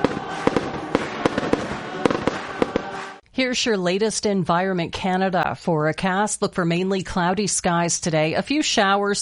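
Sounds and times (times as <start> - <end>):
fireworks exploding: 0.0 - 3.2
speech: 3.4 - 9.2.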